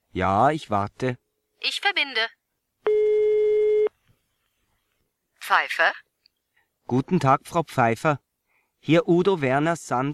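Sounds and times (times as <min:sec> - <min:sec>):
speech: 0:00.1 - 0:02.4, 0:05.5 - 0:06.0, 0:06.9 - 0:08.2, 0:08.8 - 0:10.1
telephone busy signal: 0:02.9 - 0:03.9.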